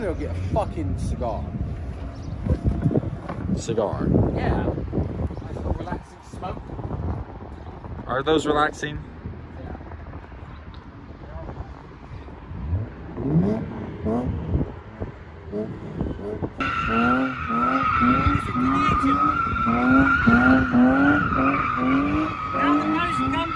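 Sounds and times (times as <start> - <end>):
speech: 0.0 - 1.8, 3.6 - 5.0, 5.8 - 7.0, 8.1 - 9.1
car engine revving: 12.6 - 23.5
car tires squealing as a manual car launches: 16.6 - 23.5.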